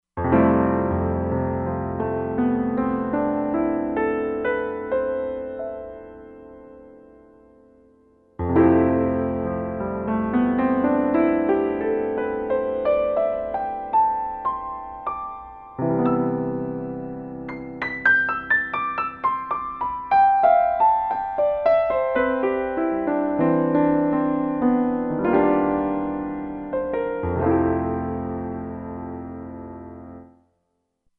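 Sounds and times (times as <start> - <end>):
Ultimat Grand piano patch on a Roland Fantom XR synthesizer: 0.2 - 30.4.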